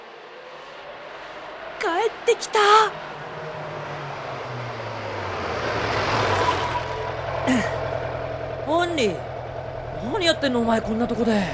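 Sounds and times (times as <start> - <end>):
speech: 1.8 - 3.0, 9.0 - 9.2, 10.2 - 11.5
vehicle engine idling: 3.0 - 11.5.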